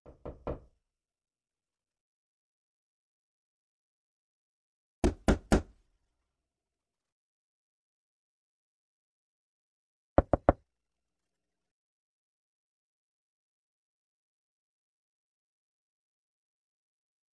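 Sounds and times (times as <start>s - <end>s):
knocking on various doors: 0.1s - 0.7s, 5.0s - 5.7s, 10.2s - 10.6s.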